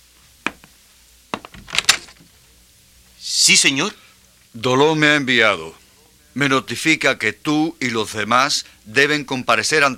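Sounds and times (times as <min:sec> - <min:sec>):
door opening with latch and handle clatter: 0:01.4 - 0:02.3
speech: 0:03.4 - 0:05.8, 0:06.4 - 0:09.9.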